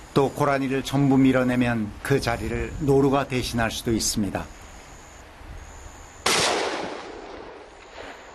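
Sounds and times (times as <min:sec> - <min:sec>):
speech: 0:00.2 - 0:04.6
gunshot echoing: 0:06.2 - 0:08.1.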